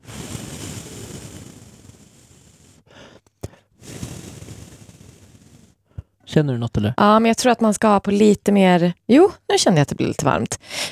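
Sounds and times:
breath blown onto the back of a hand: 0.0s - 6.2s
speech: 6.4s - 10.9s.

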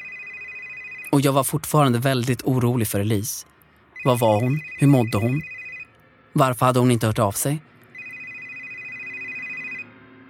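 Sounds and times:
telephone ringing with electronic trilling tone: 0.0s - 1.5s, 4.0s - 6.0s, 7.9s - 9.9s
speech: 1.1s - 5.6s, 6.4s - 7.7s.

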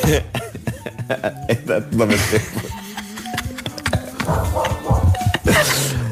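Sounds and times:
laughter: 0.0s - 6.0s
speech: 0.1s - 2.8s
dog barking: 4.2s - 5.3s.

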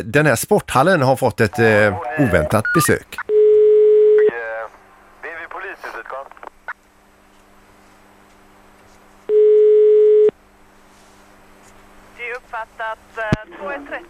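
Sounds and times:
speech: 0.0s - 3.3s
telephone ringback tone on an outgoing call: 2.3s - 4.3s, 9.3s - 10.3s.

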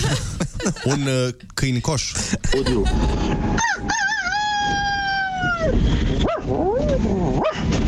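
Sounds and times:
laughter: 0.0s - 1.4s, 2.2s - 3.4s
steady noise: 0.0s - 7.8s
speech: 0.7s - 4.2s, 5.6s - 7.8s
rooster crowing in a strained dog-like way: 2.9s - 5.7s.

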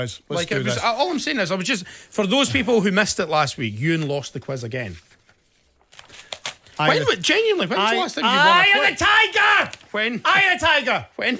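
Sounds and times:
speech: 0.0s - 5.1s, 6.8s - 11.3s
paper sheets rustling as they are got ready for a quiz: 3.6s - 10.8s.

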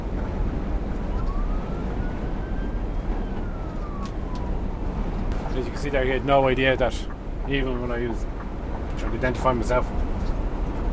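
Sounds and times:
road and traffic noise: 0.0s - 10.9s
police car siren wailing: 0.8s - 6.0s
speech: 5.8s - 8.4s, 9.0s - 10.1s.

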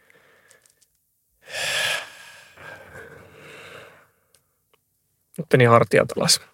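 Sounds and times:
breathy exhale: 1.4s - 4.1s
deep inhalation after holding breath: 1.4s - 4.1s
speech: 5.4s - 6.5s.

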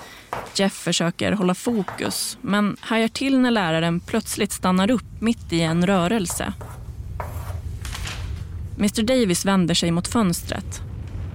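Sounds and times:
speech: 0.6s - 6.7s, 8.8s - 10.9s
steady low hum: 2.8s - 11.3s
white chalk scratching on a slate blackboard: 6.6s - 7.6s.

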